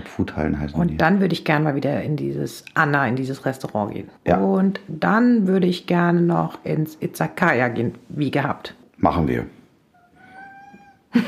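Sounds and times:
speech: 0.1 - 9.6
cat meowing: 9.9 - 11.2.

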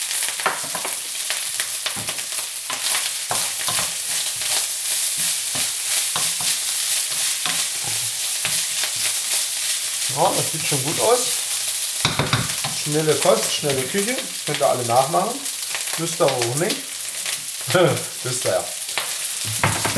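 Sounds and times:
pan-fried scrambled egg sizzling in a hot pan: 0.0 - 19.9
utensil scraping a pan while stirring scrambled egg: 2.0 - 9.4
speech: 10.2 - 11.4, 12.9 - 16.9, 17.7 - 18.8.

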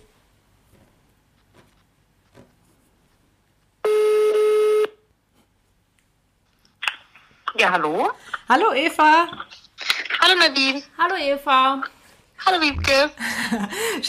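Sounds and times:
phone ringback tones of a call being placed: 3.9 - 4.9
speech: 7.6 - 9.7, 10.2 - 14.0
laughter: 12.9 - 14.0.

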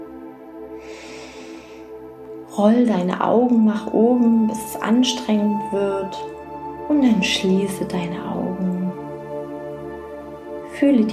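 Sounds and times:
quiet steady tonal background: 0.0 - 11.1
deep breath in during a guided relaxation exercise: 0.7 - 2.1
speech: 2.6 - 8.7, 10.8 - 11.1.

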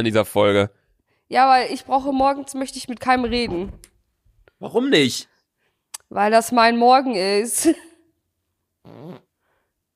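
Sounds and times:
speech: 0.0 - 3.9, 4.6 - 5.3, 6.1 - 7.9, 8.8 - 9.2
fart into microphone: 8.8 - 9.3.

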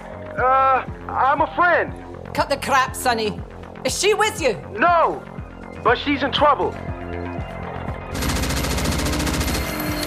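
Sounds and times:
speech: 0.4 - 6.9
automatic gunfire: 8.2 - 10.0.

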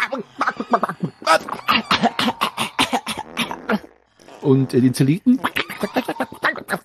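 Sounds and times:
speech: 0.1 - 0.8, 4.5 - 5.5
person coughing: 0.7 - 3.8.

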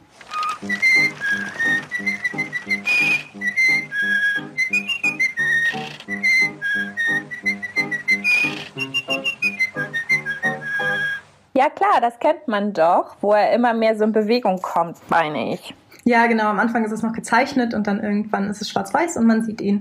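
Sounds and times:
lively instrumental accompaniment: 0.0 - 11.4
cartoon character whistling a bouncy jaunty tune: 0.4 - 11.3
speech: 0.6 - 7.8, 11.6 - 19.8.

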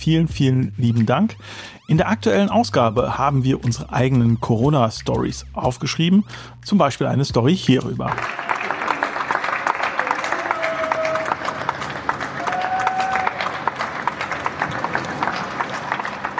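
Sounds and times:
speech: 0.0 - 8.5
neighbourhood balcony applause for essential workers: 8.1 - 16.3.

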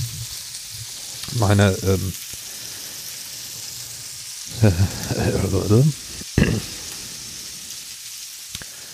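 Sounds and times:
food sizzling in a frying pan: 0.0 - 8.9
speech: 1.3 - 2.2, 4.5 - 6.8
laughter: 4.5 - 5.5.

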